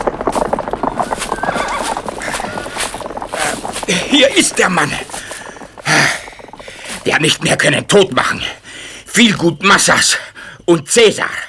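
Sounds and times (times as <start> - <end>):
horses whinnying: 0.0 - 7.0
several horses galloping hooves: 0.0 - 10.2
speech: 3.9 - 5.2, 7.1 - 8.6, 9.2 - 11.4.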